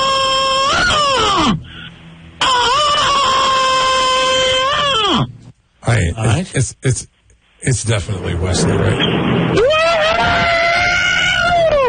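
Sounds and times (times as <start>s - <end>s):
high-pitched yell from a rock song: 0.0s - 1.6s, 2.4s - 5.3s, 9.6s - 11.8s
speech: 6.4s - 10.6s.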